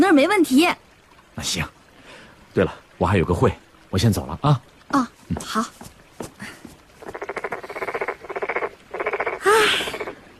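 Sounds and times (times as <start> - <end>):
speech: 0.1 - 0.8, 1.4 - 1.8, 2.6 - 6.6
toad croaking in rattling trills: 7.0 - 10.1.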